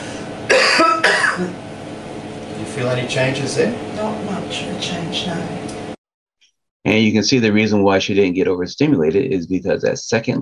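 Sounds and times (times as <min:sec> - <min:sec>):
forceful raspy cough: 0:00.5 - 0:01.6
speech: 0:02.8 - 0:05.7, 0:06.8 - 0:10.4.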